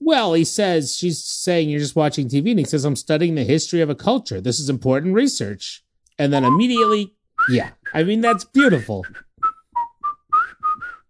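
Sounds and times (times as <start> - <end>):
speech: 0.0 - 9.2
person whistling a short tune: 6.4 - 8.1, 9.0 - 11.0.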